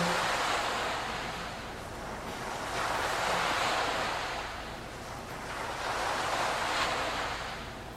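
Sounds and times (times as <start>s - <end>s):
waves breaking on the seashore: 0.0s - 7.9s.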